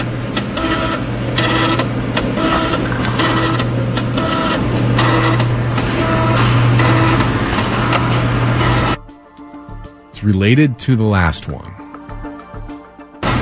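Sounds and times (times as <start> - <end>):
floppy disk drive whirring as a disk is inserted and ejected: 0.0 - 9.1
speech: 10.2 - 11.8.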